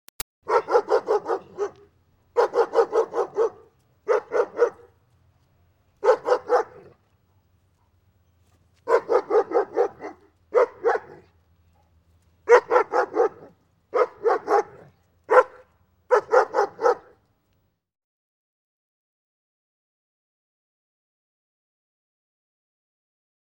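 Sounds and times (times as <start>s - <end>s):
farm dog barking at a household: 0.4s - 5.0s, 6.0s - 7.0s, 8.8s - 17.2s.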